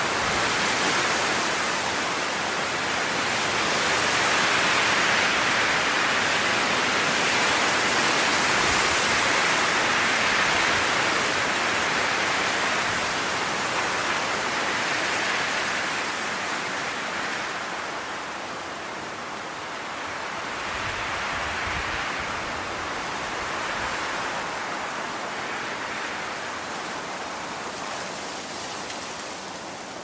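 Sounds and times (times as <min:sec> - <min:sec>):
wind blowing through a forest: 0:00.0 - 0:30.0.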